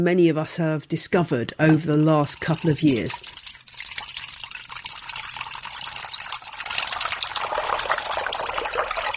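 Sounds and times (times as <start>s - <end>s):
speech: 0.0s - 3.4s
water trickling from a tap: 2.2s - 9.1s.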